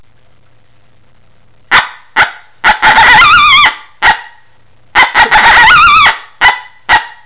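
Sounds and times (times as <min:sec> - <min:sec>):
coyote giving sharp barks: 0:01.7 - 0:07.2.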